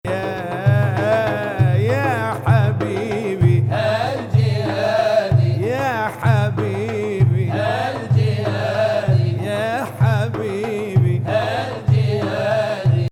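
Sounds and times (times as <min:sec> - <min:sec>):
Arabic music in 6-8 time: 0:00.0 - 0:13.0.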